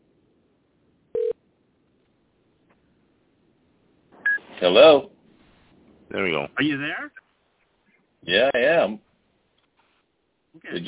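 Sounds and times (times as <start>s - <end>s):
short electronic telephone tones as a phone call is placed: 1.2s - 1.4s
speech: 4.6s - 5.1s, 6.1s - 7.2s, 8.2s - 9.1s, 10.6s - 10.8s.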